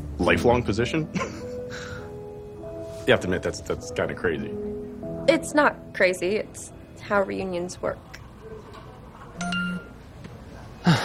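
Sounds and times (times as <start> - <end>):
speech: 0.2 - 1.4, 3.1 - 4.7, 5.3 - 8.1
phone notification ding: 9.4 - 10.0.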